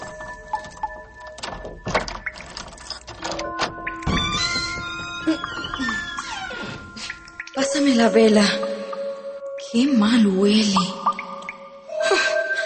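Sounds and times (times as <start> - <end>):
small key rattling and clicking in a cellar door lock: 0.0 - 5.9
small cellar door thudding: 0.0 - 7.0
small cellar door creaking open on squeaky hinges: 0.0 - 7.6
speech: 7.8 - 8.6, 9.7 - 11.0.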